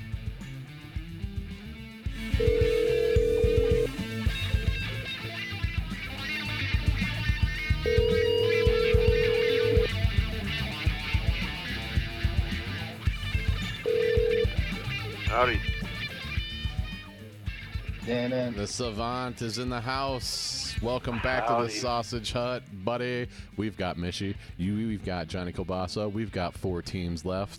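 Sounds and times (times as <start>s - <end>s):
loud busy dialing music track: 1.2s - 19.8s
steady telephone-like electronic tone: 2.2s - 4.0s, 7.8s - 10.0s, 13.8s - 14.8s
speech: 18.5s - 27.5s.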